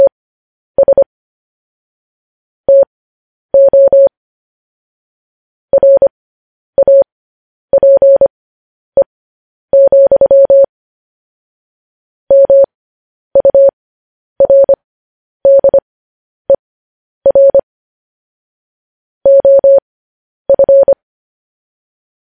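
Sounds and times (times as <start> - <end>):
Morse code beeps in a 600 hertz tone: 0.8 - 1.1, 2.7 - 2.9, 3.6 - 4.1, 5.7 - 6.1, 6.8 - 7.1, 7.7 - 8.3, 9.8 - 10.7, 12.3 - 12.7, 13.4 - 13.7, 14.4 - 14.8, 15.4 - 15.8, 17.3 - 17.6, 19.3 - 19.8, 20.5 - 21.0.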